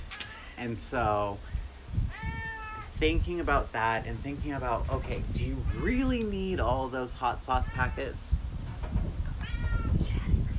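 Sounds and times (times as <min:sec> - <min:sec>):
low steady rumble of room noise: 0:00.0 - 0:10.5
cat meowing: 0:00.1 - 0:00.6, 0:02.1 - 0:02.9, 0:07.6 - 0:08.2, 0:09.3 - 0:10.1
speech: 0:00.6 - 0:01.6, 0:03.0 - 0:08.4.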